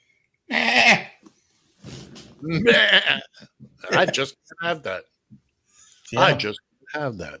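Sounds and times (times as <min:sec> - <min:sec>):
goat bleating with loud quavering cries: 0:00.5 - 0:01.2, 0:02.4 - 0:03.3
breathy grunting: 0:02.0 - 0:04.1
speech: 0:02.4 - 0:05.1, 0:06.1 - 0:07.3.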